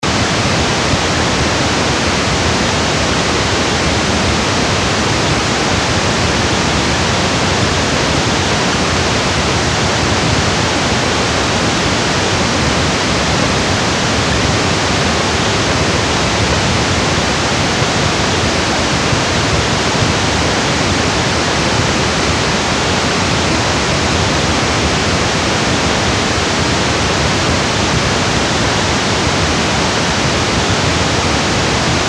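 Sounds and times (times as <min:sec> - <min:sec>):
band-limited pink noise: 0:00.0 - 0:32.0.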